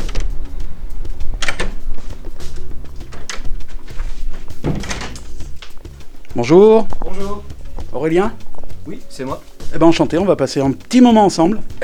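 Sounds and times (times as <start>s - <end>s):
shop door latch clunking as pushed open: 1.4s - 2.1s, 2.9s - 5.9s
speech: 6.4s - 11.8s.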